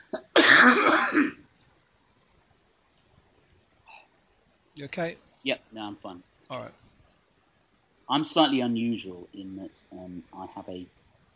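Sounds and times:
speech: 0.1 - 1.4, 4.8 - 6.9, 8.1 - 11.3
person coughing with a rough hacking burst: 0.2 - 1.4.

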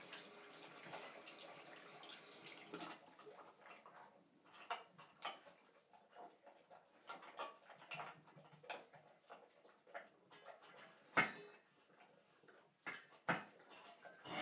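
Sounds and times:
dog lapping and licking at its metal food bowl: 0.1 - 14.3.

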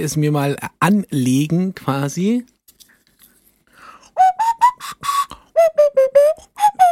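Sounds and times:
speech: 0.0 - 2.5
breathy whistle-like nose flute playing short notes: 4.2 - 6.9.

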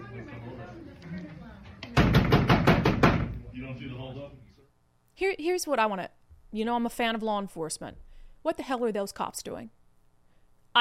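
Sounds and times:
fists pounding on a door: 2.0 - 3.4
speech: 5.2 - 9.8.

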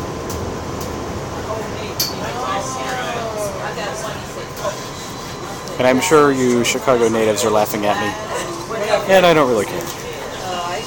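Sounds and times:
elevated L train roaring past overhead: 0.0 - 8.3
voices murmuring: 1.4 - 10.8
speech: 5.8 - 8.3, 8.9 - 10.0.

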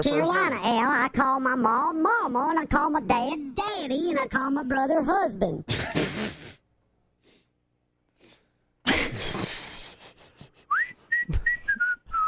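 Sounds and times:
speech: 0.0 - 6.4
person whistling a short bright stinger tune: 10.7 - 12.2.

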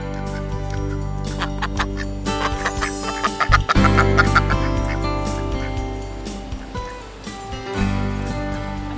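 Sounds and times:
ducks quacking on a river weir: 0.0 - 7.2
water rushing over a river weir: 1.8 - 8.9.

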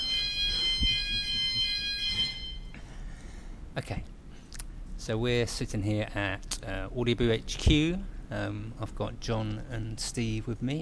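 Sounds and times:
fire alarm ringing: 0.0 - 2.8
speech: 3.8 - 4.2, 5.0 - 10.8.

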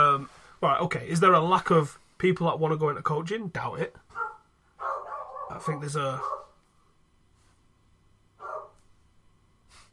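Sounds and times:
speech: 0.6 - 4.1, 5.5 - 6.4
dog barking downstairs: 4.1 - 6.6, 8.4 - 8.8.

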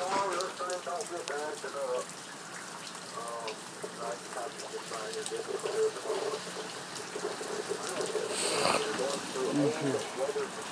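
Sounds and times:
voices talking: 0.0 - 2.1, 3.1 - 10.7
heavy rain falling: 0.0 - 10.7.

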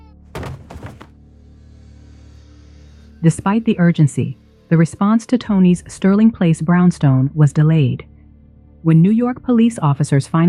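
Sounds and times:
loud jarring thud: 0.4 - 1.1
heavier bumps: 0.4 - 1.2
speech: 3.2 - 8.1, 8.8 - 10.4.

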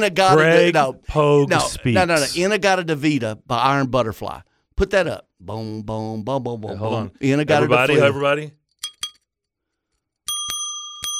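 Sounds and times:
speech: 0.0 - 8.6
bicycle bell ringing: 10.3 - 11.1.

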